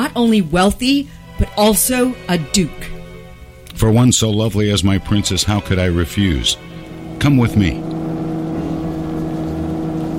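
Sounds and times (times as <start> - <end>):
speech: 0.2 - 3.0, 3.8 - 8.0
electric mole vehicle engine drone racing underground: 6.0 - 10.1.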